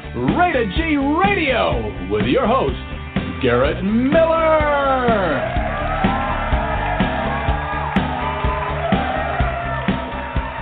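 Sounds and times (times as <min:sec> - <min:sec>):
speech: 0:00.2 - 0:05.7
large studio audience cheering, whooping and applauding: 0:04.6 - 0:10.6
steady pulsing beat: 0:04.6 - 0:10.6.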